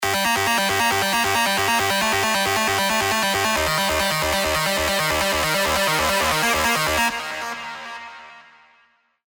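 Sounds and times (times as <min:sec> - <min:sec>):
trance synth leads: 0:00.0 - 0:07.1.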